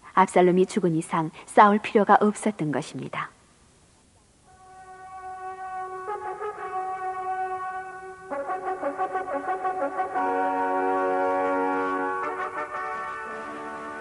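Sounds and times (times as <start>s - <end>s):
speech: 0.2s - 3.4s
brass horn blown in a forest to signal the end of a battle: 4.5s - 14.0s.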